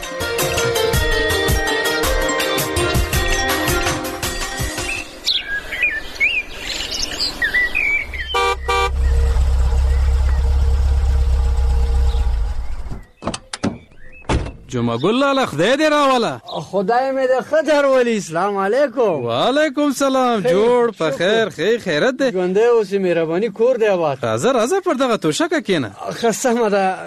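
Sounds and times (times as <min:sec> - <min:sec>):
birds chirping: 0:00.4 - 0:20.8
car engine idling: 0:08.0 - 0:13.1
speech: 0:14.8 - 0:27.0.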